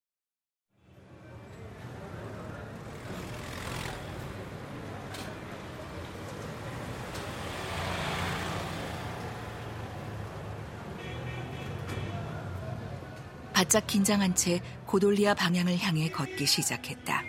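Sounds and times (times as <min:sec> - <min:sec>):
busy street traffic with cars and motorbikes: 0:00.7 - 0:17.2
speech: 0:13.6 - 0:17.2.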